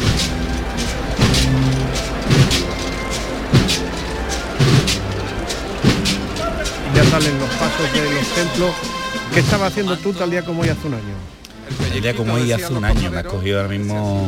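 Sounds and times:
swaying procession palio canopy of the Virgin clinking and knocking: 0:00.0 - 0:10.3
outdoor crowd murmur in the San Lorenzo area: 0:00.0 - 0:14.2
speech: 0:07.2 - 0:14.2.

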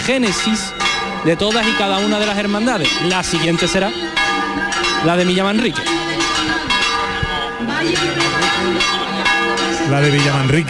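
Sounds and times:
speech: 0:00.0 - 0:04.2, 0:05.0 - 0:06.0, 0:09.9 - 0:10.6
church bells ringing: 0:00.0 - 0:10.6
indistinct voices and crowd noise: 0:00.0 - 0:10.6.

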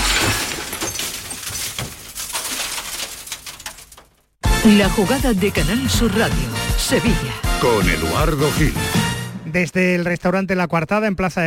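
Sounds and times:
scattered tinkling and crackling mirror glass fragments: 0:00.0 - 0:04.2
mirror being smashed, glass shattering: 0:00.0 - 0:04.4
speech: 0:04.6 - 0:11.4.

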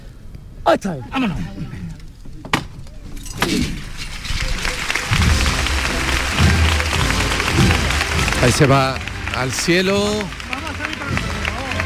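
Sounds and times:
speech: 0:00.7 - 0:01.8, 0:08.4 - 0:10.4
crowd applauding with many hands clapping: 0:03.9 - 0:11.8.

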